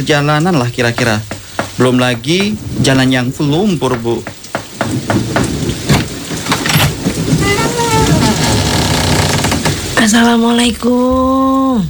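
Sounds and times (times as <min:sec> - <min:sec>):
speech: 0:00.0 - 0:04.3, 0:04.9 - 0:05.4, 0:10.1 - 0:11.8
sharp knocks or drips: 0:00.0 - 0:09.9
heavy rain: 0:00.0 - 0:10.8.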